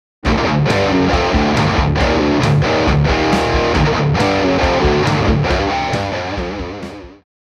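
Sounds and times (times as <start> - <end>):
drums: 0.2 - 7.2.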